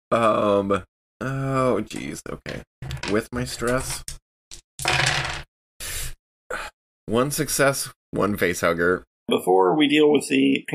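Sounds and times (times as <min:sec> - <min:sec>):
speech: 0:00.1 - 0:04.2, 0:07.1 - 0:10.7
dice clattering across a hard tabletop: 0:02.5 - 0:05.5.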